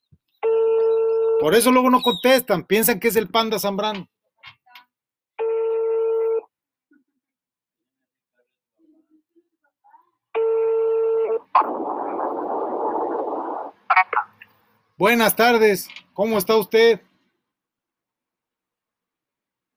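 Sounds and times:
telephone ringback tones of a call to a dean: 0:00.4 - 0:01.5, 0:05.4 - 0:06.4, 0:10.4 - 0:11.5
speech: 0:01.4 - 0:04.6, 0:15.0 - 0:17.1
hissy telephone line noise as the call connects: 0:11.3 - 0:16.8.

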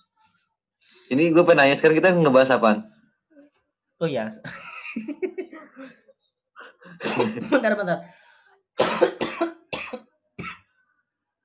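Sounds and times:
speech: 0:01.1 - 0:02.9, 0:04.0 - 0:06.0, 0:06.9 - 0:08.2
laughter: 0:04.5 - 0:05.9, 0:06.7 - 0:07.7
person coughing harshly: 0:06.8 - 0:07.6, 0:08.8 - 0:10.6.

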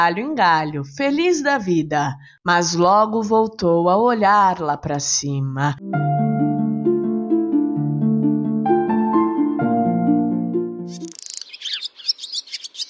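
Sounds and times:
speech: 0:00.0 - 0:06.4
sustained melodic music passage: 0:05.8 - 0:11.1
small bird's quick bright chirping song: 0:10.9 - 0:12.8.

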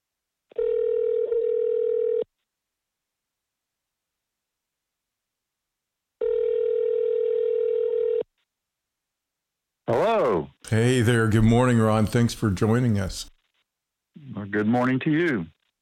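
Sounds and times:
telephone line tone, a steady electronic hum: 0:00.6 - 0:02.3, 0:06.2 - 0:08.2
speech: 0:10.7 - 0:13.4, 0:14.5 - 0:15.6.

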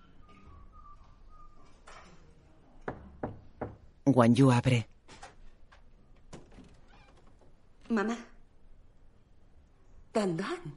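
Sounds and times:
knocking on a house door: 0:02.8 - 0:04.0
speech: 0:04.1 - 0:04.9.

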